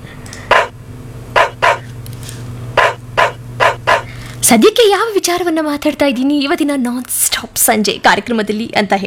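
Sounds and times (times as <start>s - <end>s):
low steady hum: 0.0s - 8.8s
dog barking: 0.5s - 0.8s, 1.4s - 1.9s, 2.8s - 4.1s
speech: 4.5s - 9.0s.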